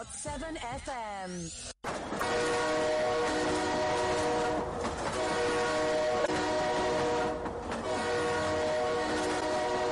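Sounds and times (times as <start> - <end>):
speech: 0.0 - 1.7
approaching train horn blaring in a long steady chord: 2.2 - 9.9.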